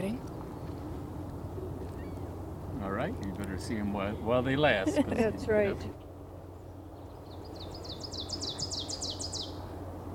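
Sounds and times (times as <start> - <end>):
low steady hum: 0.0 - 10.1
ovenbird singing: 1.6 - 2.3, 6.5 - 9.8
speech: 3.1 - 6.0.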